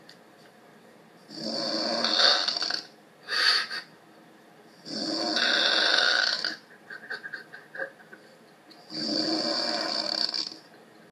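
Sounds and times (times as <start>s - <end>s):
very loud snoring: 1.3s - 2.9s, 4.8s - 6.6s, 8.9s - 10.6s
laughter: 6.6s - 8.8s, 10.6s - 11.1s.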